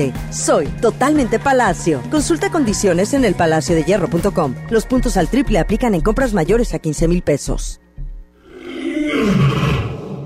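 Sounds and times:
speech: 0.0s - 7.8s
deep rumbling lion roar with gravelly growl: 8.4s - 10.2s.

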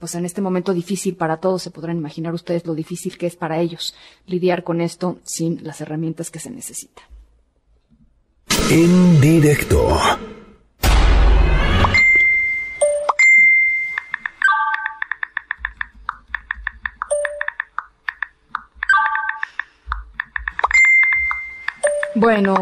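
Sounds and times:
speech: 0.0s - 7.2s, 8.7s - 10.4s, 22.2s - 22.5s
brief loud burst of noise: 8.5s - 9.5s, 10.1s - 12.1s
WhatsApp message notification chimes: 11.9s - 15.0s, 17.1s - 17.5s, 20.6s - 22.5s.

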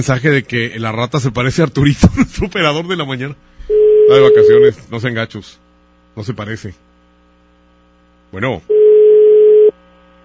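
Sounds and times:
speech: 0.0s - 3.5s, 4.1s - 5.6s, 6.2s - 6.9s, 8.3s - 8.8s
faint hum: 0.0s - 10.2s
electronic telephone ringing tone on an unanswered call: 3.7s - 4.7s, 8.7s - 9.7s.

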